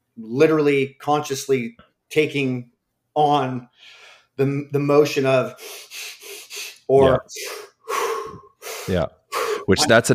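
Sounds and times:
speech: 0.2 - 6.1, 6.9 - 7.7, 8.3 - 10.1
deliberate hyperventilation with rapid forceful breathing: 5.5 - 9.8
strained voiced gasp: 5.6 - 9.8.

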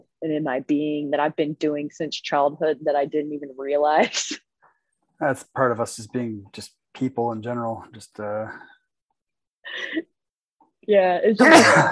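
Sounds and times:
speech: 0.2 - 4.4, 5.2 - 8.7, 9.6 - 10.1, 10.9 - 11.9
person sneezing loudly: 11.4 - 11.9.

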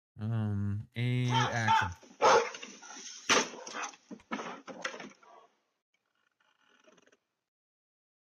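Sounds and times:
speech: 0.2 - 2.0
dog barking at a bear: 1.3 - 2.6, 3.4 - 4.0, 4.7 - 5.6.

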